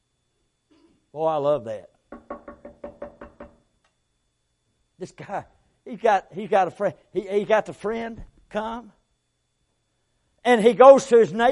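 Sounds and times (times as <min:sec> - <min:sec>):
speech: 0:01.1 - 0:02.0, 0:05.0 - 0:09.0, 0:10.4 - 0:11.5
knocking on a door: 0:02.1 - 0:03.6.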